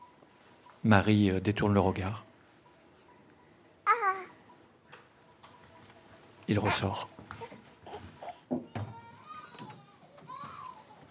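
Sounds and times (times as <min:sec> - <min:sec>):
faint noise: 0:00.0 - 0:11.0
speech: 0:00.8 - 0:02.3, 0:06.5 - 0:07.2
baby crying: 0:03.8 - 0:04.4, 0:06.6 - 0:10.9.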